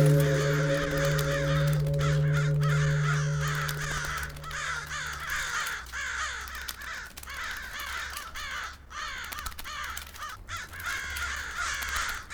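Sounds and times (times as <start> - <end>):
crow: 0.1 - 12.3.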